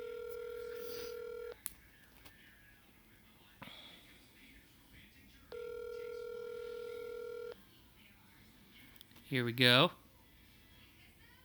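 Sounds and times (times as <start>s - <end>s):
telephone ringback on an outgoing call: 0.0s - 1.6s, 5.5s - 7.6s
speech: 9.3s - 10.0s.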